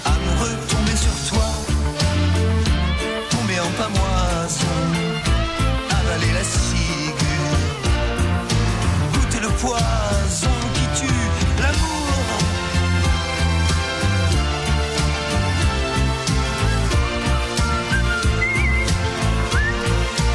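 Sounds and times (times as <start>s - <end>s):
band arrangement in a song: 0.0s - 20.3s
whistled melody in a song: 16.6s - 20.3s.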